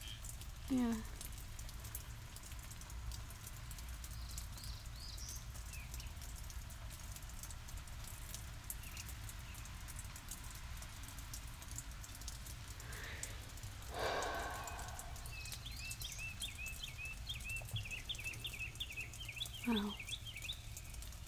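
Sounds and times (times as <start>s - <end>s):
water dripping from the roof: 0.0s - 21.2s
speech: 0.7s - 1.1s, 19.7s - 20.0s
low rumbling wash: 12.8s - 16.0s.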